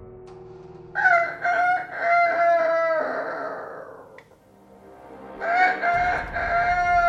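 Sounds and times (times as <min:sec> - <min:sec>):
rooster crowing loudly: 0:01.0 - 0:04.2, 0:05.4 - 0:07.0.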